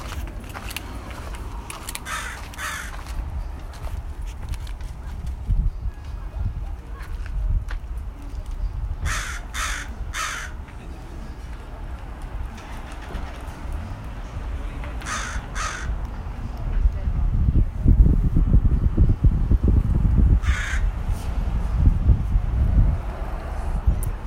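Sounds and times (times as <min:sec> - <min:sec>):
steady outdoor wind noise: 0:00.0 - 0:10.7, 0:12.1 - 0:24.2
crow cawing on top of a riverside bistro: 0:02.0 - 0:03.1, 0:09.0 - 0:10.6, 0:15.0 - 0:16.0, 0:20.4 - 0:20.9.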